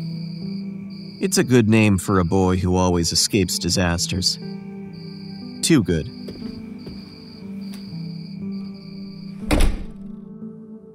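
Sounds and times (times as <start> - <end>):
speech: 1.2 - 4.8, 5.6 - 6.2
door opening thunk: 9.4 - 10.2.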